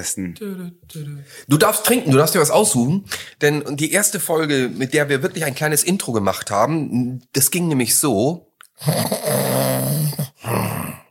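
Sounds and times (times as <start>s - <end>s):
speech: 0.0s - 10.7s
loud rasping rumbling snoring: 8.8s - 11.0s.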